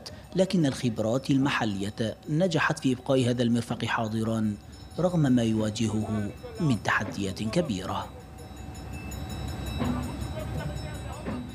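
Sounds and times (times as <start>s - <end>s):
speech: 0.4s - 8.2s
train rumbling along rails with rhythmic clatter and mechanical hum: 4.2s - 11.5s.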